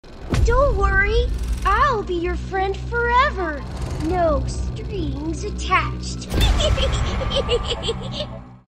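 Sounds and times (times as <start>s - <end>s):
reversed strings: 1.3s - 6.4s
laughter: 6.4s - 8.5s.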